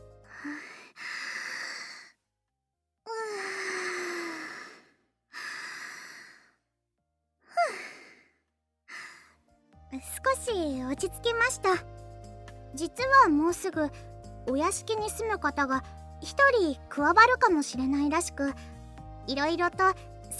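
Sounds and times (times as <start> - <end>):
deep breaths in and out with soft voiced sighing: 0.3 - 2.2, 3.2 - 6.7, 7.5 - 9.4
speech: 10.0 - 11.9, 12.8 - 18.7, 19.3 - 20.3.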